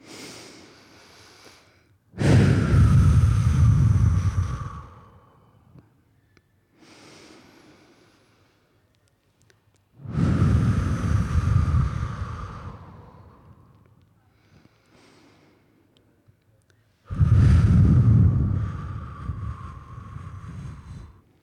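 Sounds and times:
two people taking deep morning breaths together: 0.0 - 5.9, 6.8 - 8.8, 10.0 - 16.0, 17.0 - 21.4
breathy wind-like rush on the microphone: 2.2 - 5.5, 10.0 - 13.8, 17.1 - 21.2.

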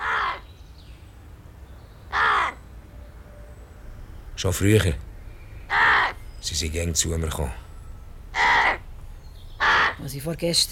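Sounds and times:
large black bird cawing while settling on a front door: 0.0 - 0.6, 2.1 - 2.7, 5.2 - 6.5, 7.6 - 10.1
speech: 4.4 - 5.1, 6.5 - 7.7, 10.1 - 10.7.

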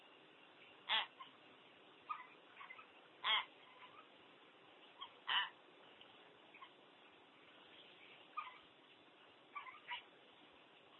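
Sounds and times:
common hill myna squawking: 0.9 - 1.4, 2.1 - 4.1, 5.0 - 5.6, 9.5 - 10.1.

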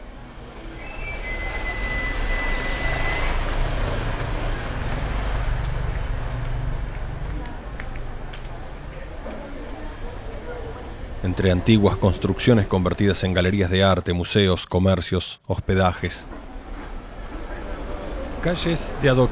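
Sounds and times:
constant heavy traffic of cars and motor engines: 0.0 - 13.7, 16.0 - 19.2
speech: 11.2 - 16.4, 18.4 - 19.2.

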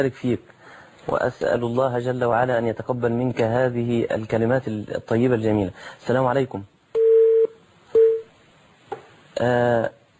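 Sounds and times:
speech: 0.0 - 6.7, 9.4 - 10.0
telephone beeps after a dropped call: 7.0 - 8.3.

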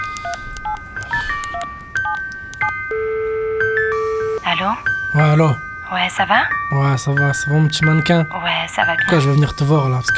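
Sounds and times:
touch-tone beeps of a telephone number being dialed: 0.0 - 4.4
longer steady telephone tone: 1.5 - 4.5
speech: 4.6 - 10.1.

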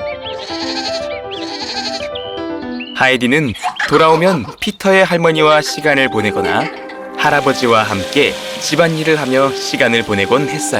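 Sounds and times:
goats bleating in a meadow: 0.4 - 2.1
speech: 3.0 - 10.7
steady tonal background: 5.0 - 9.7.

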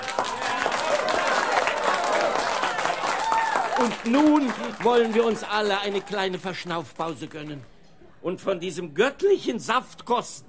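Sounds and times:
wedding guests clapping after the bridal couple's dance: 0.0 - 7.7
wedding guests crowd noise: 0.0 - 8.9
speech: 3.8 - 10.4.

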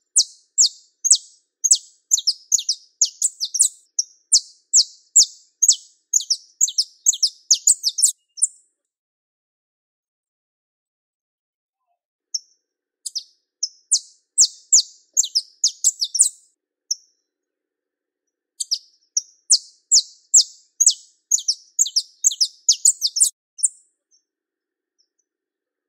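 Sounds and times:
pure Belgian canary singing: 0.0 - 8.6, 13.1 - 16.5, 18.6 - 23.8.

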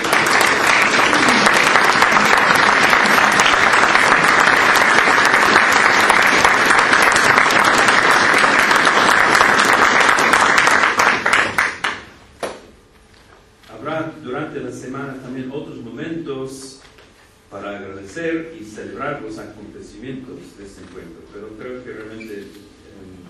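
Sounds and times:
audience applause at a conference gathering: 0.0 - 12.1
speech: 19.2 - 22.6.

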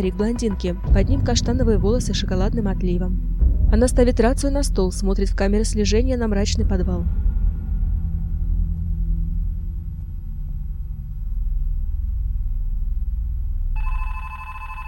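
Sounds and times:
speech: 0.0 - 7.3
steady low rumble: 0.0 - 14.8
telephone ringing on a table with a bright electronic tone: 13.8 - 14.8.

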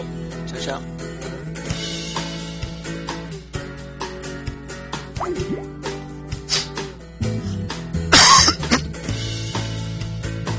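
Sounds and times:
speech: 0.0 - 1.4, 5.3 - 5.8
soft music: 0.0 - 9.8
person coughing: 8.1 - 8.9.

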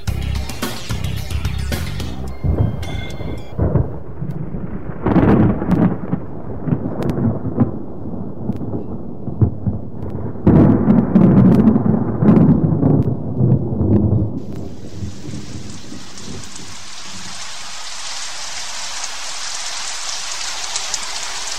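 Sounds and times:
steady rainfall: 0.0 - 21.5
deep continuous rolling thunder: 2.4 - 17.4.

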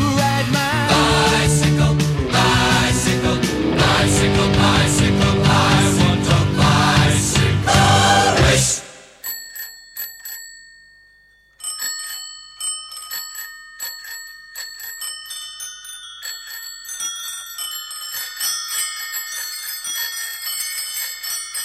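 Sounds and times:
dense loud sound: 0.9 - 9.2
bicycle bells ringing during a cycling event: 9.2 - 21.6.

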